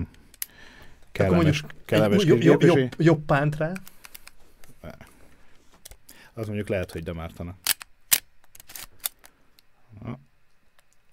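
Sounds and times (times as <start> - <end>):
speech: 1.2 - 3.9, 6.4 - 7.6, 10.0 - 10.3
analog film camera shutter clicking: 7.6 - 9.2.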